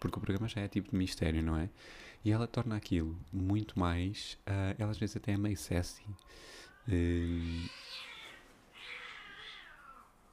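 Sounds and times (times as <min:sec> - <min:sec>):
speech: 0:00.0 - 0:08.1
cats yowling and caterwauling in a fight: 0:06.6 - 0:10.3.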